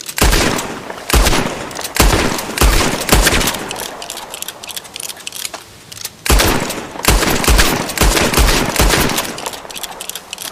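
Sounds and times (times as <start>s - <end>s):
rumbling video game ambience: 0.0s - 10.5s
rapid video game gunfire: 0.2s - 4.2s, 6.3s - 10.0s.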